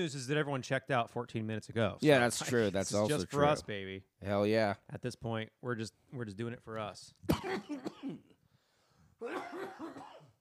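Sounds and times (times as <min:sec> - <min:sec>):
speech: 0:00.0 - 0:08.3, 0:09.2 - 0:10.2
person coughing: 0:07.3 - 0:08.4, 0:09.2 - 0:10.4.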